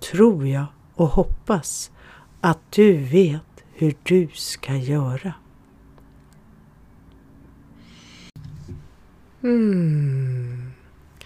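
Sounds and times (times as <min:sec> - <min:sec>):
speech: 0:00.1 - 0:05.4, 0:09.4 - 0:10.6
short puffs of breath blown through loose lips: 0:07.8 - 0:08.4.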